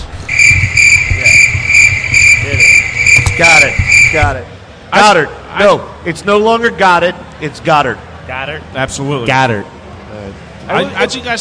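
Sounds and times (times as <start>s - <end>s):
crickets chirping: 0.3s - 4.2s
speech: 3.4s - 9.8s, 10.7s - 11.3s.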